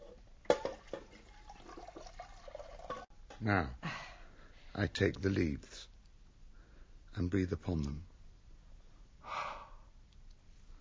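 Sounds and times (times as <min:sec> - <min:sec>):
hot water being poured: 0:00.4 - 0:03.1
speech: 0:03.4 - 0:03.8, 0:04.8 - 0:05.9, 0:07.2 - 0:08.1.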